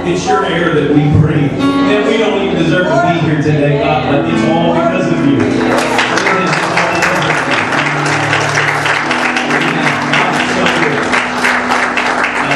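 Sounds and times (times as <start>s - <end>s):
speech: 0.0s - 6.0s
large church audience clapping during worship: 5.3s - 12.5s.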